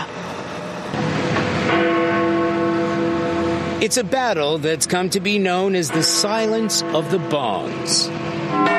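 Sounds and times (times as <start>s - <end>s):
steady noise: 0.0s - 8.7s
historic clock tower bell tolling in London: 1.3s - 4.6s, 5.4s - 8.7s
speech: 3.8s - 8.7s.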